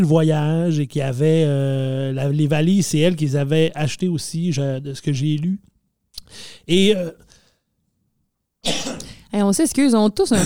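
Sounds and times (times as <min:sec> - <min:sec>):
speech: 0:00.0 - 0:05.7, 0:06.3 - 0:07.2, 0:08.6 - 0:10.4
harsh breathy cough after choking on a doughnut: 0:08.6 - 0:09.2.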